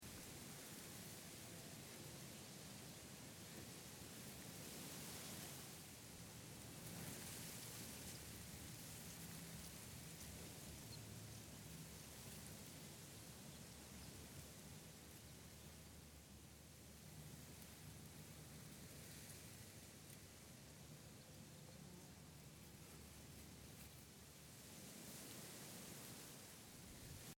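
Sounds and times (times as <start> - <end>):
moderate wind blowing across a wheat field: 0.0 - 27.3.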